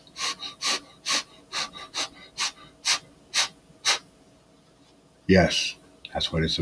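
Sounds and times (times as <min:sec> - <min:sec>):
quick rhythmic panting breaths: 0:00.0 - 0:04.0
speech: 0:05.3 - 0:06.6.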